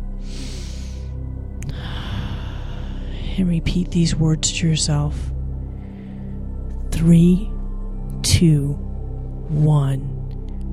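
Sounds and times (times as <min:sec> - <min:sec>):
low steady tone: 0:00.0 - 0:10.7
deep breath inhale and exhale: 0:00.2 - 0:03.4
speech: 0:03.4 - 0:05.3, 0:07.0 - 0:07.5, 0:08.4 - 0:08.9, 0:09.5 - 0:10.2.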